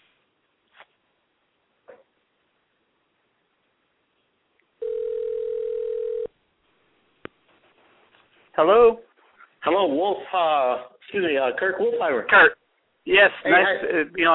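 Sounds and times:
electronic telephone ringing tone: 4.8s - 6.3s
speech: 8.6s - 9.0s, 9.6s - 14.3s.

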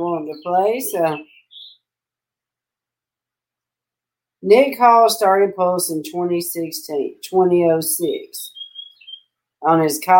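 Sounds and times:
speech: 0.0s - 1.3s, 4.4s - 8.5s, 9.6s - 10.1s
bird chirp outside a window: 0.0s - 2.0s, 8.2s - 9.4s.

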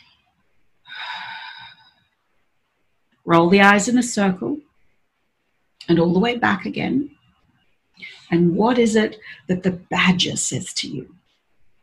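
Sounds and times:
deep breath in and out during a guided relaxation: 0.8s - 2.1s
speech: 3.3s - 4.7s, 5.9s - 7.2s, 8.0s - 11.2s.

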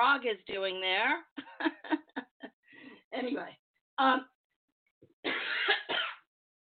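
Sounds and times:
speech: 0.2s - 2.1s, 3.2s - 4.3s
laughter: 1.4s - 2.5s
person coughing: 5.3s - 6.3s.

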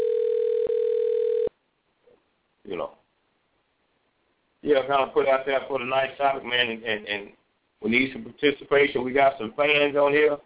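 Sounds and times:
telephone ringing on an open call-in line: 0.0s - 1.5s
speech: 4.7s - 10.4s.

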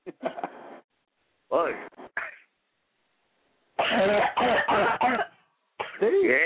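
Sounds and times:
speech: 1.5s - 2.0s
woman coughing and choking: 3.8s - 6.1s.

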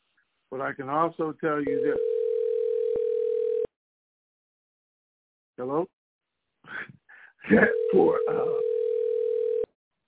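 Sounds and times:
speech: 0.5s - 2.1s, 5.6s - 6.0s, 6.8s - 8.6s
telephone dial tone after a dropped call: 1.8s - 3.7s, 7.7s - 9.7s.

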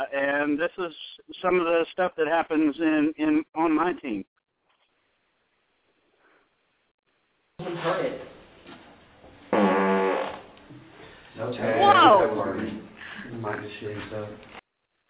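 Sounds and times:
speech: 0.0s - 4.3s, 7.6s - 8.3s, 11.4s - 14.5s
loud buzzy fart: 9.5s - 10.6s.

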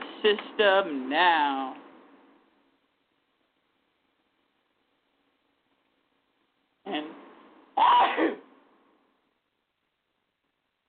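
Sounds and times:
speech: 0.2s - 1.8s
person sneezing: 7.8s - 8.5s.

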